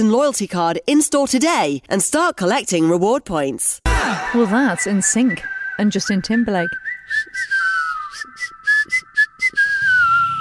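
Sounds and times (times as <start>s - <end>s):
speech: 0.0s - 7.5s
melodic whistling in a song: 5.4s - 10.3s.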